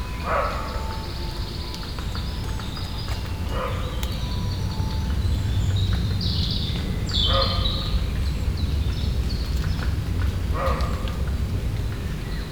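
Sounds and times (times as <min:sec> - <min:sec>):
roe deer barking in France: 0:00.1 - 0:01.3, 0:03.4 - 0:05.1
steady low rumbling noise: 0:01.0 - 0:12.4.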